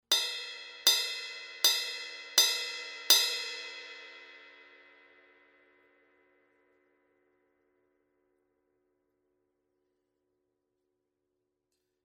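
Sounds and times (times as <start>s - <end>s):
18-inch Zildjian Uptown ride cymbal bell hits: 0.1s - 4.3s.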